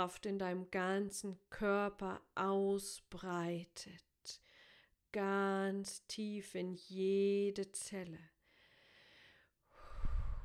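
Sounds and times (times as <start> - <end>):
speech: 0.0 - 8.3
slow deep breathing: 8.5 - 10.4.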